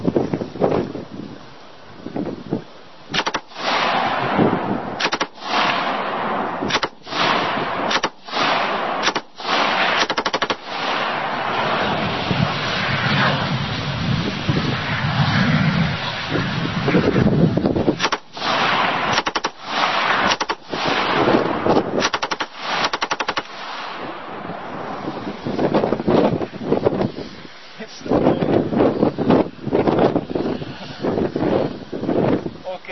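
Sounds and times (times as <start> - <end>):
steady gusting wind: 0.0 - 32.9
rifle tracer rounds fired at a propane tank: 3.1 - 12.2, 18.0 - 25.1.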